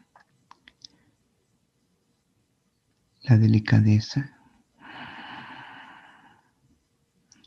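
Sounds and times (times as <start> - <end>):
speech: 3.3 - 4.4
long breath through the nose: 4.8 - 6.4.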